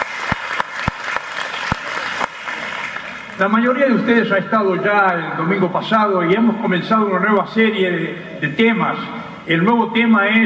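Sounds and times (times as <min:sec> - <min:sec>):
crowd applause welcoming a guest: 0:00.0 - 0:03.4
speech: 0:03.4 - 0:10.4.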